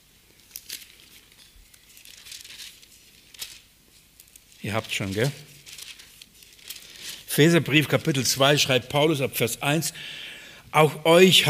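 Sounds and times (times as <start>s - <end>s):
thin Bible pages being flipped: 0.3s - 7.3s
speech: 4.6s - 5.5s, 7.4s - 11.4s.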